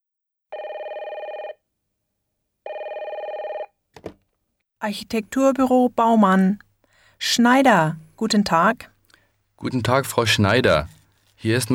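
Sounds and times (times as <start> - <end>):
electronic telephone ringing for a call to an architecture office: 0.5 - 1.6, 2.7 - 3.8
speech: 4.8 - 6.6, 7.2 - 8.9, 9.6 - 11.7.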